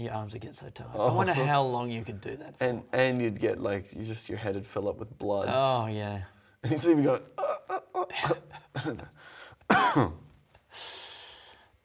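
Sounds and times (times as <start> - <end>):
speech: 0.0 - 10.2
harsh coughing: 7.5 - 10.2
wheezy breath out: 10.7 - 11.8.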